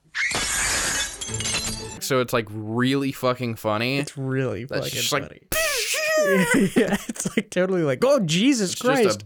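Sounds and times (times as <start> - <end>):
glass shattering: 0.3 - 1.9
speech: 2.1 - 5.6, 6.2 - 9.2
laughter: 5.6 - 7.5.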